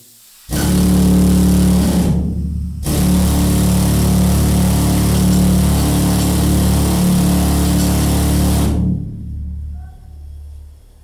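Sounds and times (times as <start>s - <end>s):
pneumatic mining hammer drilling rock in a mine: 0.5s - 8.9s.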